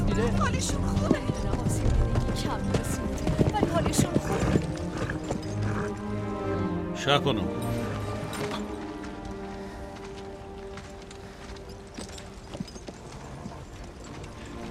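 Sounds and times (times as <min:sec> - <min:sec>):
horse hooves clip-clopping: 0:00.0 - 0:06.6, 0:07.6 - 0:14.6
speech: 0:00.2 - 0:03.1, 0:07.1 - 0:07.7.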